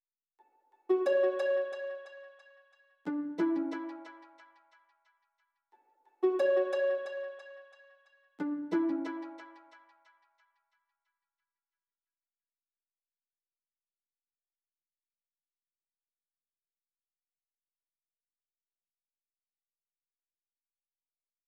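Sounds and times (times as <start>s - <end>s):
harp loop in F sharp minor at 90 BPM: 0.9s - 2.4s, 3.1s - 4.4s, 6.2s - 7.7s, 8.4s - 9.8s.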